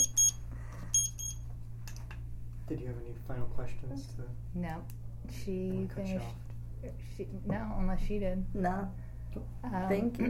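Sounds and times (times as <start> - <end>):
timer buzzer shrill electronic beeps: 0.0 - 1.4
steady low hum: 0.0 - 10.2
speech: 2.7 - 10.2.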